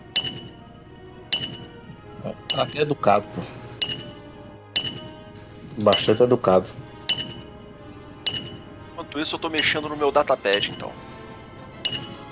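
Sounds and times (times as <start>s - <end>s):
hammer striking metal at a forge: 0.0s - 0.7s, 1.3s - 3.0s, 3.8s - 5.3s, 5.9s - 6.3s, 7.0s - 7.7s, 8.3s - 8.8s, 9.6s - 11.0s, 11.8s - 12.3s
speech: 2.6s - 3.6s, 5.8s - 6.8s, 9.2s - 11.0s.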